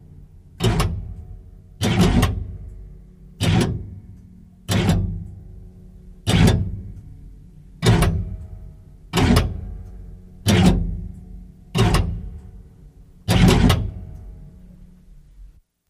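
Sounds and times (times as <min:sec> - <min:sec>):
higher metal clunks: 0:00.6 - 0:05.5, 0:06.2 - 0:07.2, 0:07.8 - 0:14.5.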